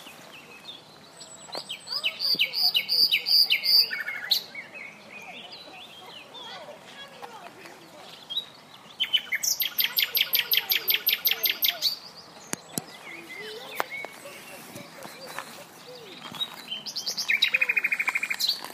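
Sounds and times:
common nightingale Luscinia megarhynchos singing: 0:00.0 - 0:06.4, 0:08.0 - 0:18.7.

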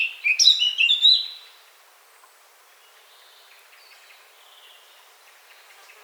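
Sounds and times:
Eurasian blackcap Sylvia atricapilla song: 0:00.0 - 0:01.4.

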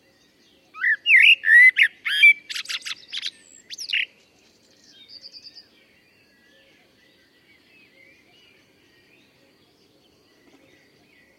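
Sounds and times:
common blackbird Turdus merula song with flute-like warbling and scratchy twittering: 0:00.0 - 0:11.3.

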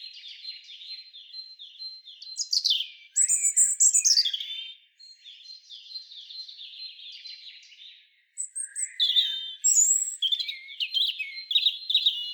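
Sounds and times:
European robin Erithacus rubecula singing: 0:00.0 - 0:12.3.

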